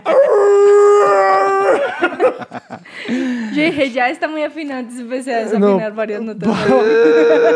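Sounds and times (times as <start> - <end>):
wolf howling: 0.0 - 1.9
laughter: 1.5 - 3.8, 6.4 - 7.5
speech: 3.1 - 7.5.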